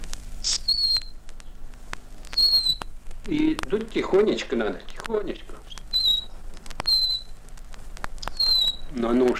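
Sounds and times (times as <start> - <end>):
faint noise: 0.0 - 9.3
bird whistle imitating a nightingale to lure nightingales: 0.4 - 1.2, 2.3 - 2.9, 5.9 - 7.3, 8.2 - 8.9
speech: 3.3 - 5.6, 9.0 - 9.3.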